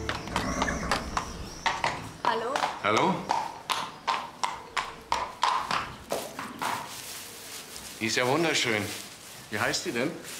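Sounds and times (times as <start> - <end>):
horse hooves clip-clopping on a hard surface at a walking pace: 0.0 - 10.3
speech: 2.4 - 3.4, 8.0 - 10.3.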